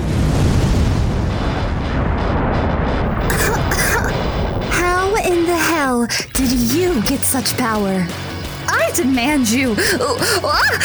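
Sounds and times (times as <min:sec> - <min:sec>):
energy blast explosion: 0:00.0 - 0:05.5
crackling bursts: 0:00.0 - 0:08.8
speech: 0:06.0 - 0:08.3, 0:08.9 - 0:10.8
laughter: 0:09.7 - 0:10.8.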